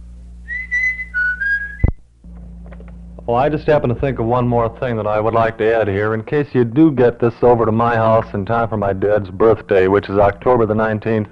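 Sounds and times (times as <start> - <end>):
person whistling a short tune: 0.5 - 1.9
speech: 3.3 - 11.3.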